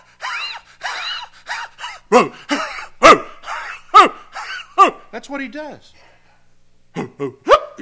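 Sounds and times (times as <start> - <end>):
human voice imitating a leashed dog choking and barking: 0.9 - 5.1, 7.0 - 7.8
speech: 5.3 - 6.1, 7.2 - 7.8.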